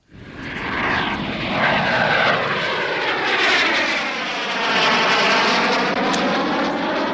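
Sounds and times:
propeller airplane engine droning overhead: 0:00.0 - 0:07.1.

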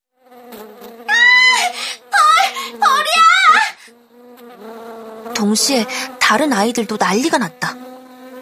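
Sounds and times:
girl screaming in classroom: 0:01.1 - 0:03.9
speech: 0:05.5 - 0:07.8.

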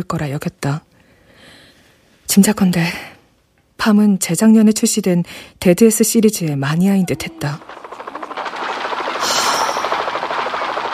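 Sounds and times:
speech: 0:00.0 - 0:00.9, 0:02.3 - 0:03.1, 0:03.8 - 0:07.9
hissing rush: 0:07.0 - 0:10.9
video game helicopter rotor thumping: 0:07.6 - 0:10.9.

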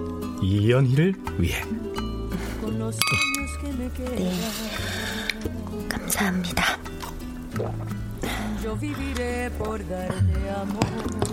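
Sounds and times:
speech: 0:00.4 - 0:02.0, 0:02.6 - 0:07.0, 0:07.6 - 0:11.3
glasses clinking in a toast: 0:03.0 - 0:03.9.

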